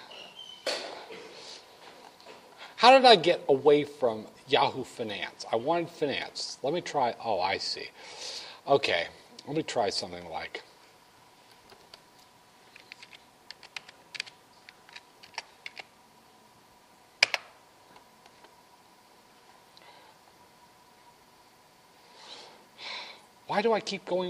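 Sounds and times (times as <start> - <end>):
speech: 2.8 - 10.7, 23.6 - 24.2
typing on a computer keyboard: 12.8 - 14.3.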